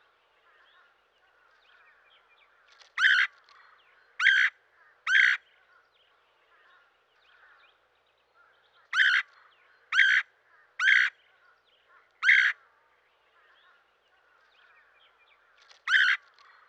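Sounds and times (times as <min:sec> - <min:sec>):
red-headed woodpecker giving harsh calls: 0:02.8 - 0:03.4, 0:04.2 - 0:05.5, 0:08.8 - 0:11.2, 0:12.2 - 0:12.6, 0:15.8 - 0:16.3.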